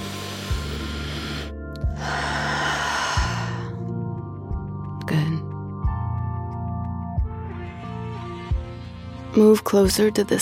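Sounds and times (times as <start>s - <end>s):
slow breathing in and out through the nose: 0.0s - 3.8s
soft sustained musical drone: 0.0s - 10.4s
speech: 9.4s - 10.4s.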